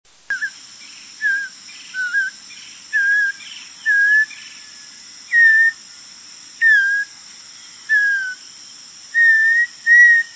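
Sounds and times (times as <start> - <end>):
Audubon's oriole calling: 1.2 - 5.8, 6.6 - 7.1, 7.9 - 8.4, 9.1 - 10.3.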